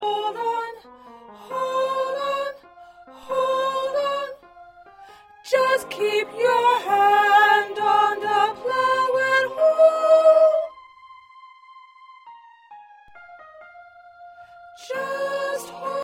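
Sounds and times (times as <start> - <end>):
high second soprano choir part singing: 0.0 - 10.7, 14.0 - 16.0.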